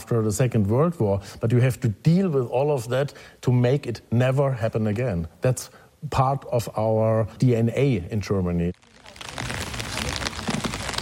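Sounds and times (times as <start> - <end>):
speech: 0.1 - 8.9
rain falling in a huge cemetery in Magdeburg: 8.8 - 11.0.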